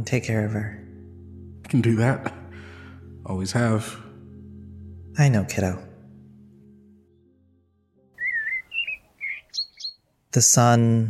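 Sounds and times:
speech: 0.0s - 0.8s, 1.7s - 2.4s, 3.2s - 4.0s, 5.2s - 5.9s, 10.3s - 11.0s
low sustained musical tone: 0.0s - 9.2s
bird singing bright warbling whistled chirps in the morning: 8.2s - 10.1s.

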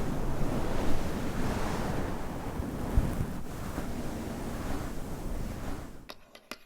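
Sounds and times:
dense scratching: 0.0s - 6.1s.

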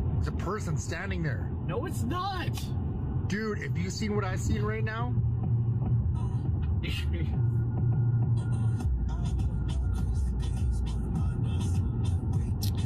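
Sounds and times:
speech: 0.2s - 5.3s, 6.8s - 7.6s
bass-heavy music playing inside a car: 2.8s - 12.8s.

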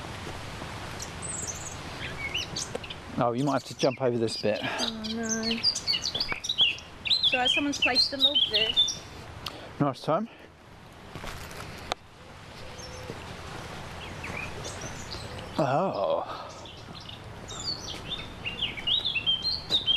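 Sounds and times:
soft outdoor rustling: 0.0s - 19.9s
several birds chirping and warbling: 1.0s - 9.2s, 11.7s - 19.9s
speech: 3.2s - 5.8s, 7.3s - 9.0s, 9.8s - 10.4s, 15.6s - 16.3s
brief spoken exclamation: 15.6s - 16.4s.

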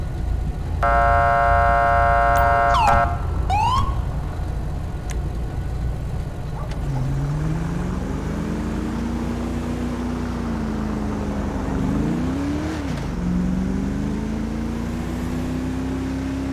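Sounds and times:
engine and traffic rumble: 0.0s - 16.5s
police car horn blast: 0.8s - 3.4s
police car siren whoops: 0.8s - 4.2s.

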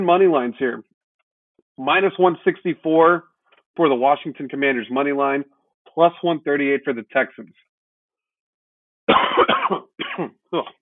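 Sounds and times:
speech: 0.0s - 0.9s, 1.8s - 7.7s, 9.1s - 10.8s
person coughing harshly: 9.1s - 10.8s.

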